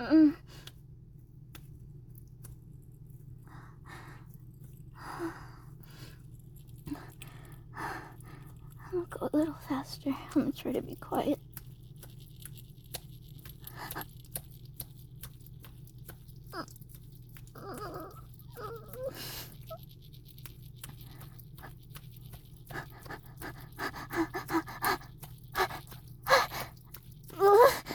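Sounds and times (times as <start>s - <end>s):
low steady hum: 0.0s - 27.9s
speech: 0.1s - 0.6s, 9.2s - 11.5s
puppy whimpering and panting: 17.6s - 19.8s, 22.7s - 26.7s.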